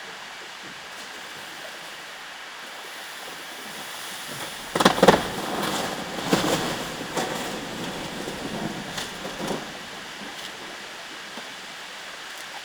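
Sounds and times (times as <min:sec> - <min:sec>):
iceberg calving: 0:00.2 - 0:12.5.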